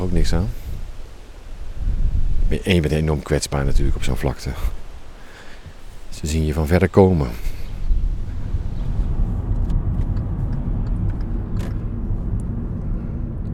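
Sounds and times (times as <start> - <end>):
speech: 0.0 - 0.6, 2.5 - 4.8, 6.1 - 7.5
car engine rumble and road noise inside a moving car: 0.0 - 13.5
faint clicks and rattles inside a moving car: 9.5 - 13.5.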